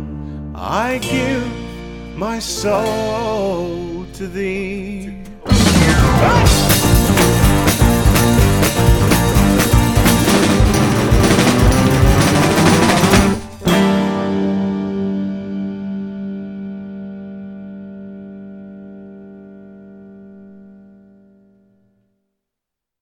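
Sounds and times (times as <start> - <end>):
speech: 0.6 - 1.6, 2.2 - 5.2
loud distorted rock music with dense drums and guitars: 5.2 - 19.4
final chord ringing out with reverb: 5.5 - 21.1.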